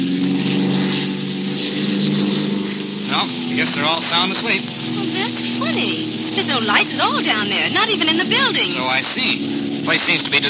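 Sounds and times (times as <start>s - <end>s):
light propeller plane engine revved while flying low over an airfield: 0.0s - 10.4s
speech: 3.2s - 10.4s.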